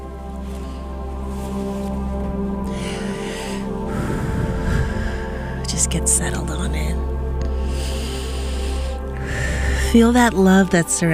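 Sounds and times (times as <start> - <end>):
sustained calm music: 0.0 - 11.1
slow deep breaths in and out during a guided relaxation: 2.6 - 6.0, 7.0 - 10.0
speech: 5.9 - 7.1, 9.9 - 11.1.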